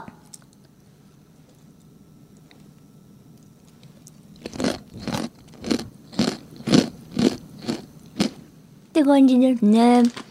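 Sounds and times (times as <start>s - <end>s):
crisp chicken-flavored snack being chewed: 3.6s - 8.4s
speech: 9.0s - 10.3s.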